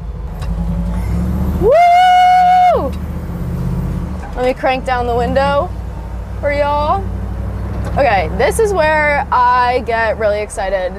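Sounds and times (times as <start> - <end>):
Bronco engine rumbling and revving as it drives off: 0.0 - 10.9
speech: 4.5 - 5.8, 6.4 - 7.1, 7.9 - 10.9.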